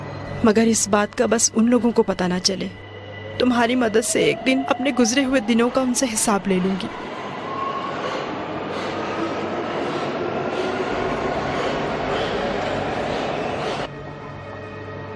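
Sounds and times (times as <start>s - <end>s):
speech: 0.4s - 2.8s, 3.4s - 7.1s
train pulling into a station, wheels and carriages rumbling and rattling: 6.2s - 13.9s.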